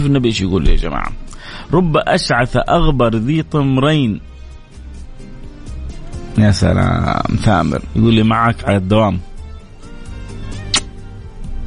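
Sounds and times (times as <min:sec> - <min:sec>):
speech: 0:00.0 - 0:04.3, 0:06.4 - 0:09.3
quick kissing smack sent on air: 0:10.5 - 0:11.0.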